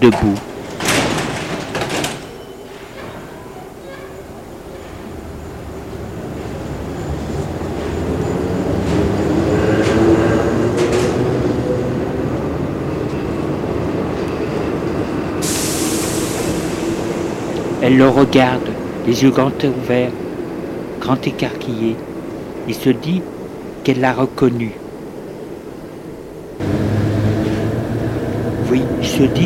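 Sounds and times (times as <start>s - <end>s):
speech: 0.0s - 0.5s, 17.9s - 20.2s, 21.0s - 22.1s, 22.7s - 24.8s, 29.2s - 29.4s
subway train carriage underway rumbling and rattling: 0.0s - 29.4s
brief brighter hiss in a subway train carriage: 15.4s - 17.7s.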